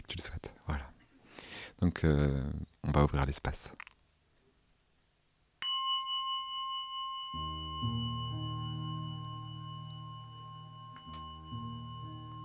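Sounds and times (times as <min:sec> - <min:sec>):
speech: 0:01.8 - 0:03.8
single bell struck to open a practice session: 0:05.6 - 0:12.4
soft low music: 0:06.6 - 0:12.4.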